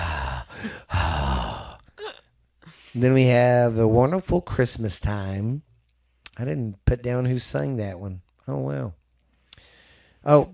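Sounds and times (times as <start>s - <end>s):
heavy breathing against a microphone: 0.0s - 1.8s
soft vocal murmur: 0.0s - 2.2s
speech: 0.6s - 0.9s, 3.0s - 5.7s, 6.4s - 9.0s, 10.2s - 10.5s.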